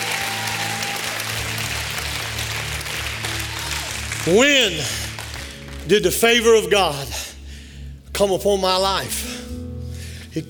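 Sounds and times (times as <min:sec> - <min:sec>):
large church audience shouting praise and cheering: 0:00.0 - 0:05.3
large church audience clapping: 0:00.0 - 0:06.7
speech: 0:04.2 - 0:05.0, 0:05.9 - 0:07.3, 0:08.2 - 0:09.3.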